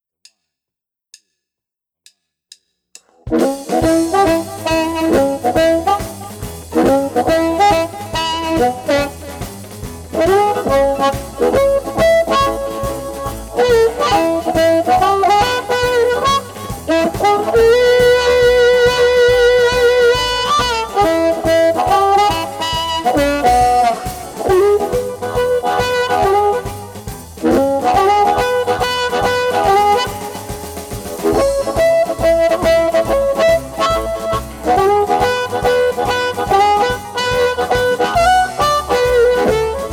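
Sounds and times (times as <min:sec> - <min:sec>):
harmonica train rhythm through a guitar amplifier: 0:03.4 - 0:39.9.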